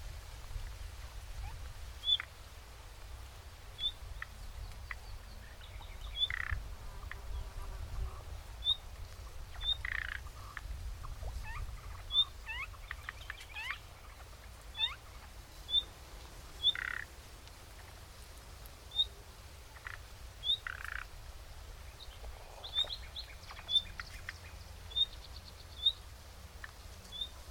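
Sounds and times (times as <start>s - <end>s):
common nightingale Luscinia megarhynchos calls: 1.4s - 2.3s, 3.8s - 8.9s, 9.5s - 15.9s, 16.6s - 17.1s, 18.9s - 21.1s, 21.8s - 27.4s.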